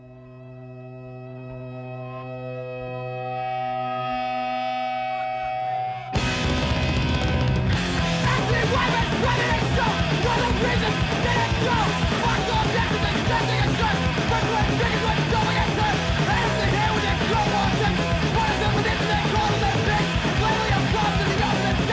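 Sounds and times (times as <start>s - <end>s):
sustained droning chord: 0.0s - 7.2s
loud dense full-band playing: 3.4s - 21.9s.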